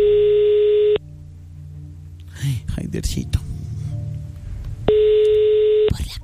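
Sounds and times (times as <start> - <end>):
telephone ring tone for an outgoing call: 0.0 - 1.0, 4.9 - 5.9
speech: 3.0 - 3.4.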